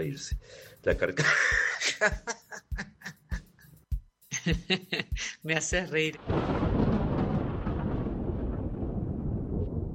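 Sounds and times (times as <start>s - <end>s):
speech: 0.0s - 2.9s, 4.4s - 6.7s
thunder rumbling from an approaching storm: 6.2s - 9.9s.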